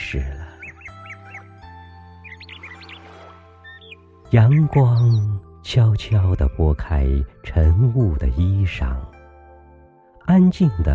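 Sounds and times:
bird calls on a morning after night rain: 0.0s - 5.5s
speech: 0.1s - 0.3s, 4.3s - 9.1s, 10.3s - 10.9s
sustained musical tones: 0.6s - 5.6s.

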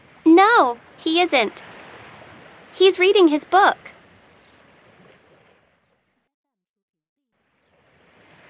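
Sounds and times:
surf on a beach: 0.0s - 5.7s, 7.4s - 8.4s
speech: 0.4s - 1.7s, 2.8s - 3.9s.

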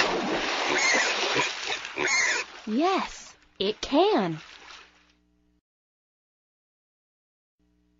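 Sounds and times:
water splashing from a pig plunging in: 0.0s - 5.1s
pig grunting and oinking: 0.6s - 2.5s
speech: 2.7s - 4.5s.

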